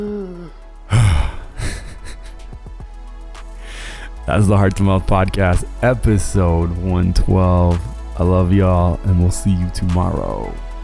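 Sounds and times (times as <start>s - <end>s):
person gasping for breath away from the microphone: 0.0s - 2.8s, 3.6s - 4.2s
speech: 4.3s - 10.6s.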